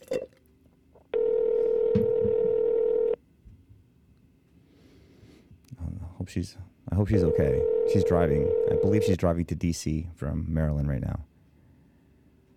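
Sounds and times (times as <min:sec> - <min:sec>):
ringback tone of an outgoing phone call: 0:01.2 - 0:03.2, 0:07.2 - 0:09.2
speech: 0:06.3 - 0:11.3.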